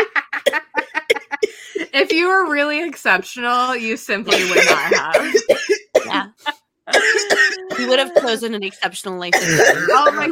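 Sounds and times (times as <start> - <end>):
person coughing harshly while laughing: 0.4 - 1.9, 4.3 - 6.3, 6.9 - 8.5, 9.3 - 10.2
speech: 2.0 - 10.2.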